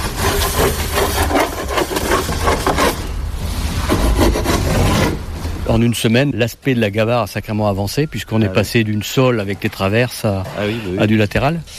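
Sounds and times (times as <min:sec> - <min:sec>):
hand saw cutting through a thick wooden hull plank: 0:00.0 - 0:03.1, 0:03.8 - 0:05.2
speech: 0:05.7 - 0:11.7.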